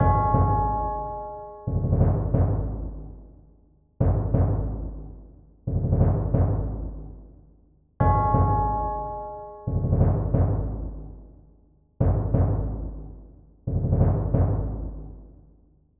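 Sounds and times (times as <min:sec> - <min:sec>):
serious low drum beats: 0:00.0 - 0:01.0, 0:01.7 - 0:03.2, 0:04.0 - 0:07.2, 0:08.0 - 0:11.2, 0:12.0 - 0:15.1.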